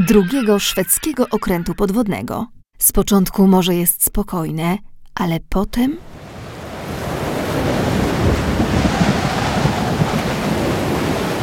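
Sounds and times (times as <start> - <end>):
speech: 0.0 - 6.3
rough sea surf churning: 6.0 - 11.4
strong gusting wind: 6.0 - 11.4.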